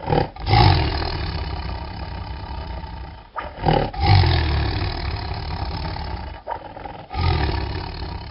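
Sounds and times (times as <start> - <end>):
hidden tiger roaring loudly: 0.0 - 8.2.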